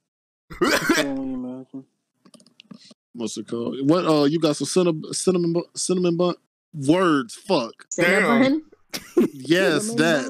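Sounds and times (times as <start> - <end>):
person fake coughing: 0.5 - 1.1
speech: 0.6 - 2.0, 2.8 - 10.2.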